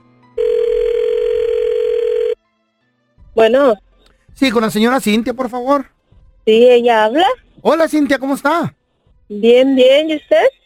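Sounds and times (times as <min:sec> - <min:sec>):
electronic phone ringing tone of a call being placed: 0:00.4 - 0:02.4
speech: 0:03.4 - 0:03.8, 0:04.4 - 0:10.6.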